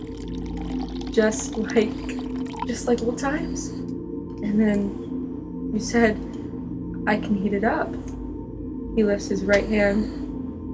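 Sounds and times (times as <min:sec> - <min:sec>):
steady stream of water pouring down: 0:00.0 - 0:03.3
speech: 0:01.2 - 0:03.8, 0:04.4 - 0:05.0, 0:05.8 - 0:06.3, 0:07.1 - 0:08.2, 0:09.0 - 0:10.2.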